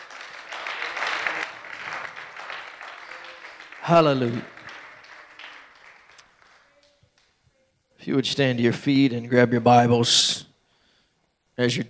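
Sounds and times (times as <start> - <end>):
roomful of people clapping: 0.0 - 7.4
speech: 3.9 - 4.6, 8.1 - 10.5, 11.6 - 11.8.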